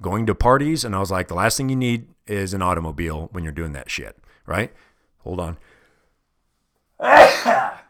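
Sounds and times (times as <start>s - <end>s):
speech: 0.0s - 5.7s, 7.0s - 7.8s
loud sneeze: 7.0s - 7.8s.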